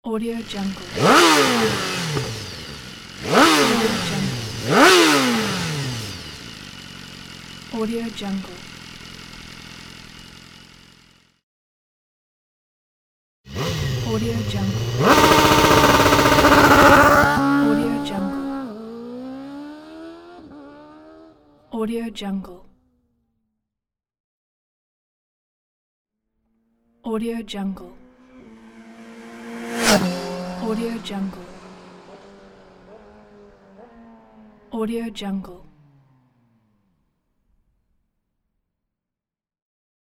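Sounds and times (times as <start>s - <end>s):
motorcycle revving: 0.4s - 11.2s, 13.6s - 21.5s, 27.9s - 36.8s.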